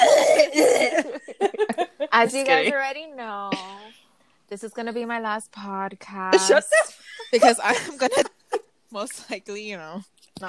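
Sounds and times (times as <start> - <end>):
person coughing: 0.0 - 1.2
laughter: 0.6 - 2.7, 6.4 - 8.6
speech: 2.2 - 3.8, 4.5 - 8.3, 8.9 - 10.4.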